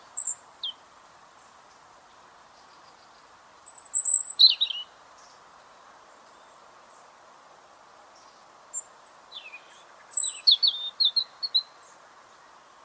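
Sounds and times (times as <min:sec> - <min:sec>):
European robin Erithacus rubecula giving high thin notes and tinkling phrases: 0:00.0 - 0:00.8, 0:02.6 - 0:05.4, 0:08.2 - 0:12.5.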